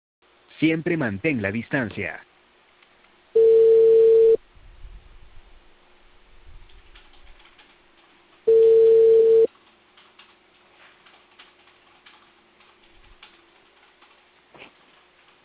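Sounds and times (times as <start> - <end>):
speech: 0.6 - 2.3
telephone line ringback tone while a call is placed: 3.4 - 4.4, 8.5 - 9.5.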